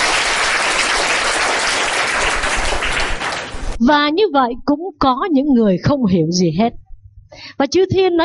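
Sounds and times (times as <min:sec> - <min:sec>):
crowd at a Buddhist teaching applauding: 0:00.0 - 0:03.8
speech: 0:03.9 - 0:08.2.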